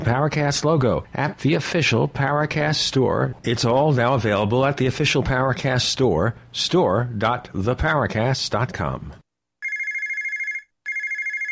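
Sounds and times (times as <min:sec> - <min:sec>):
speech: 0:00.0 - 0:09.2
telephone bell ringing: 0:09.6 - 0:11.5.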